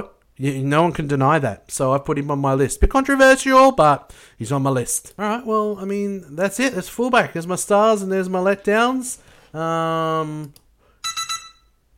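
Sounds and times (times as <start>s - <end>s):
speech: 0.0s - 10.6s
loud steady electronic alarm buzz: 11.0s - 11.8s
quick shrill alarm beeps: 11.0s - 11.8s.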